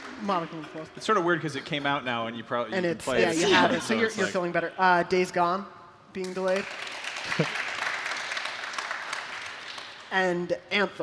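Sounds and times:
speech: 0.2s - 7.6s, 10.1s - 11.0s
audience applause: 6.8s - 10.0s.

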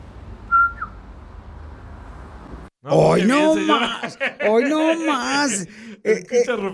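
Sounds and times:
woman whistling a family call: 0.5s - 0.9s
speech: 2.8s - 6.7s
laughter: 3.0s - 6.7s.

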